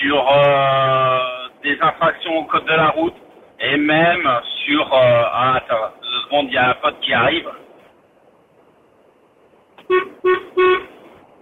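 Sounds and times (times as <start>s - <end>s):
faint noise: 0.0s - 11.3s
speech: 1.9s - 7.6s
French car horn honking: 9.8s - 11.0s.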